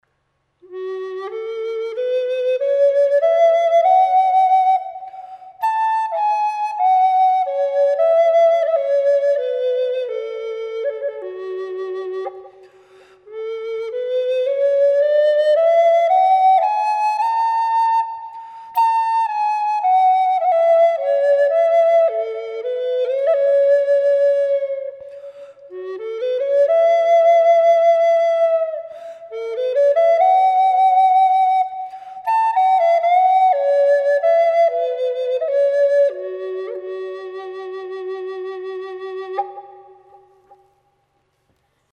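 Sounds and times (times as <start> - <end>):
wet flutes in F sharp: 0.6 - 41.3.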